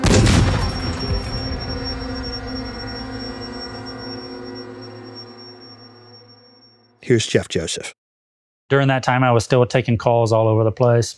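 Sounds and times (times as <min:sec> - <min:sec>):
loud deep explosion: 0:00.0 - 0:04.1
speech: 0:07.1 - 0:08.0, 0:08.7 - 0:11.1.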